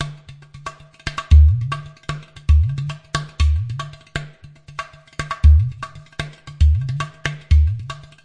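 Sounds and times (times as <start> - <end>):
udu drum loops and breaks: 1.2 - 1.8, 2.5 - 3.9, 5.3 - 8.2.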